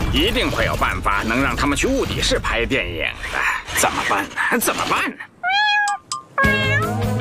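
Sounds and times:
speech: 0.1 - 5.3
cat meowing: 5.4 - 7.1.

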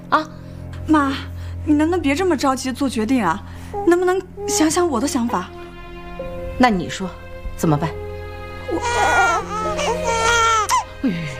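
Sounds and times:
speech: 0.1 - 5.6, 6.6 - 8.0, 11.0 - 11.3
baby crying: 8.7 - 11.3.

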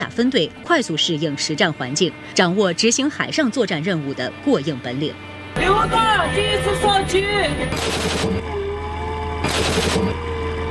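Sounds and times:
low mechanical drone: 0.0 - 10.6
speech: 0.2 - 8.6, 9.4 - 10.3
sub-caliber barrel-insert gun in a warship's main gun firing during training at sea: 7.7 - 8.4, 9.4 - 10.2.

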